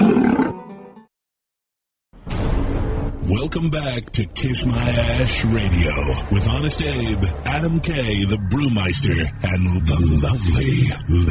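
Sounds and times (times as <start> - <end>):
loud throaty roar: 0.0 - 0.6
speech: 3.3 - 11.2.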